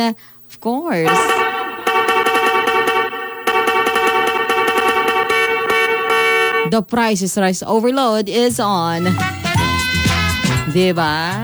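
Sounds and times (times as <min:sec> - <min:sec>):
speech: 0:00.0 - 0:01.5, 0:06.7 - 0:09.4, 0:10.7 - 0:11.4
brassy horn sound effect blaring on a radio broadcast: 0:01.0 - 0:06.7, 0:08.9 - 0:11.4.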